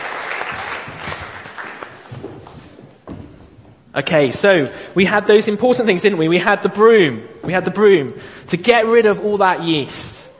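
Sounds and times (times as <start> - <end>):
audience applause: 0.0 - 2.1
speech: 4.0 - 10.2.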